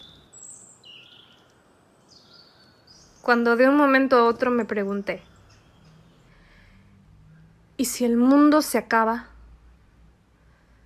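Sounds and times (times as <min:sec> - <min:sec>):
birds chirping: 0:00.0 - 0:06.8
soft hiss: 0:00.0 - 0:10.8
speech: 0:03.2 - 0:05.3, 0:08.0 - 0:09.3.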